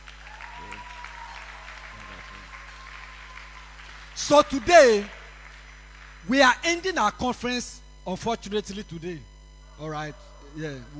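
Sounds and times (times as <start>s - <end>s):
crowd applauding: 0.0s - 6.7s
speech: 4.2s - 5.2s, 6.3s - 10.9s.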